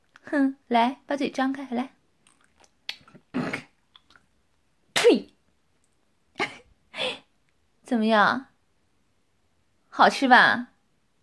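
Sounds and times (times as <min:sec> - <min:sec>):
speech: 0:00.3 - 0:02.0, 0:07.9 - 0:08.5, 0:10.0 - 0:10.7
wet spitting onto the floor: 0:02.3 - 0:04.2.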